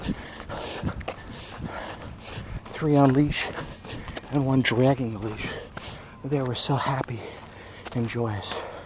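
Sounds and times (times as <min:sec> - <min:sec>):
outdoor background in the woods: 0:00.0 - 0:08.8
speech: 0:00.1 - 0:00.3, 0:02.8 - 0:03.6, 0:04.3 - 0:05.5, 0:06.2 - 0:08.7
dog whimpering on a walk in the woods: 0:03.3 - 0:04.7.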